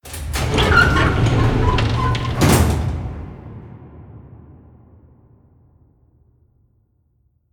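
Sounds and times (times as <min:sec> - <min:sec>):
room door opening: 0:00.0 - 0:03.6.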